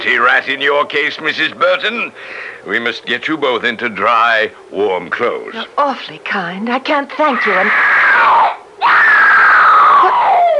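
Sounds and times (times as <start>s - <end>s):
speech: 0.0s - 8.6s
woman screaming: 7.2s - 10.5s.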